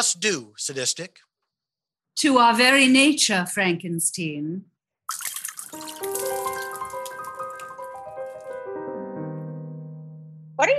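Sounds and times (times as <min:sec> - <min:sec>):
speech: 0:00.0 - 0:01.3, 0:02.2 - 0:06.1, 0:10.6 - 0:10.7
martinis being poured in a splashing gurgling stream: 0:05.1 - 0:08.7.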